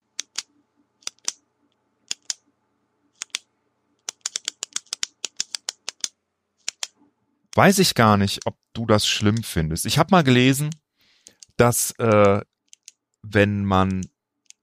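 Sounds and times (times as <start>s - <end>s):
ballpoint pen clicking: 2.1s - 2.4s, 4.0s - 6.9s, 12.7s - 13.0s, 14.5s - 14.6s
speech: 7.6s - 10.8s, 11.6s - 12.5s, 13.3s - 14.1s.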